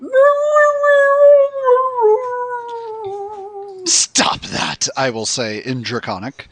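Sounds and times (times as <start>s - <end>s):
voice imitating a creature's piteous howl of pain: 0.0s - 4.1s
speech: 3.9s - 6.4s.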